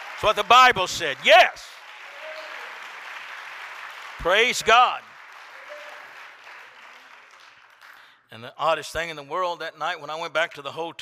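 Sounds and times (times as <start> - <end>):
congregation clapping together during a lively church service: 0.0 - 8.2
speech: 0.2 - 1.8, 4.2 - 5.1, 8.3 - 11.0.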